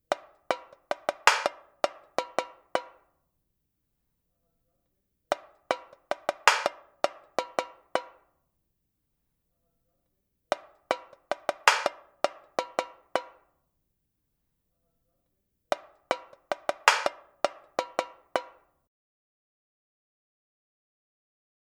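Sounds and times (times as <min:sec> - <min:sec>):
samba tamborim drumming: 0:00.1 - 0:03.0, 0:05.3 - 0:08.2, 0:10.6 - 0:13.4, 0:15.8 - 0:18.6.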